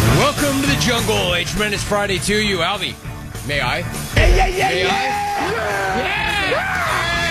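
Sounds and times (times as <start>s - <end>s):
speech: 0.9s - 6.9s
yelling sound effect of several voices whooping and hollering: 4.2s - 7.2s.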